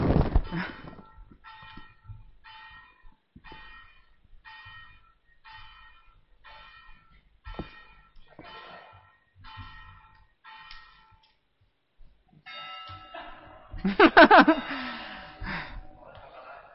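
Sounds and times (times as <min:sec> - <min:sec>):
church tower bells ringing in a peal: 0:00.0 - 0:11.2, 0:12.4 - 0:16.2
laughter: 0:13.1 - 0:16.7.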